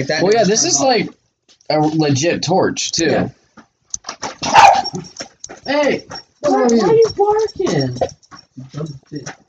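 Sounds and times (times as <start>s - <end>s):
speech: 0.0s - 3.4s, 4.9s - 9.4s
dog yelping and barking: 4.3s - 8.6s.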